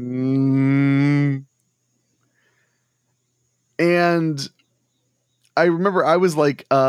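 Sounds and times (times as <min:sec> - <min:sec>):
person imitating a cow moo: 0:00.0 - 0:01.4
speech: 0:04.2 - 0:04.6, 0:05.6 - 0:06.8.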